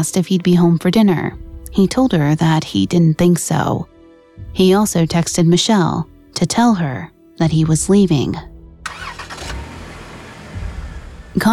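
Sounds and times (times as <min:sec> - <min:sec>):
speech: 0:00.0 - 0:09.2, 0:11.4 - 0:11.5
truck engine starting: 0:08.8 - 0:11.5.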